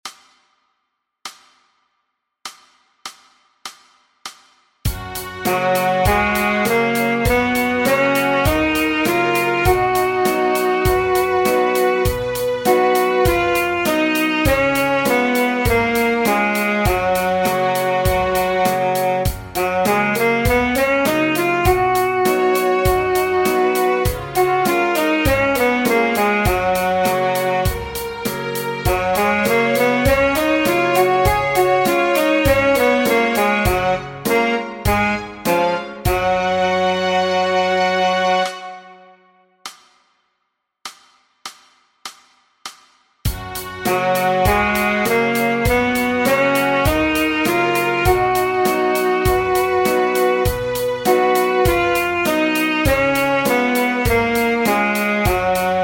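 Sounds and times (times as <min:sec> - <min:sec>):
saxophone playing an Eb scale in quarter notes: 0:04.9 - 0:39.2, 0:43.3 - 0:55.8.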